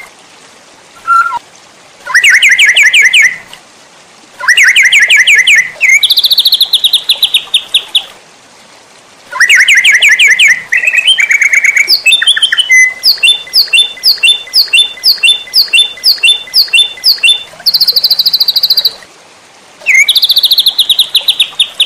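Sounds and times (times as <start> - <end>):
White-rumped shama song: 2.1 - 3.4, 4.4 - 8.1, 9.3 - 19.0, 19.8 - 21.8.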